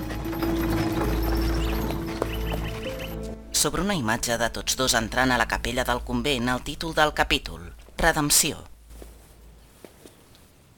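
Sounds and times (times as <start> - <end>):
hooves of a horse pulling a cart clip-clopping: 0.0 - 3.4
speech: 3.6 - 8.7.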